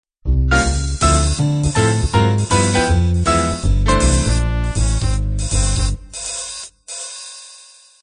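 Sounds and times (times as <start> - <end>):
up swing music intro: 0.3 - 6.2.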